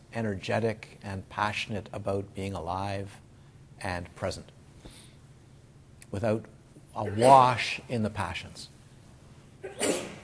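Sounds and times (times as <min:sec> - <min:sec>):
speech: 0:00.1 - 0:03.2, 0:03.8 - 0:04.6, 0:06.1 - 0:08.7, 0:09.6 - 0:10.1
sneeze: 0:09.6 - 0:10.2.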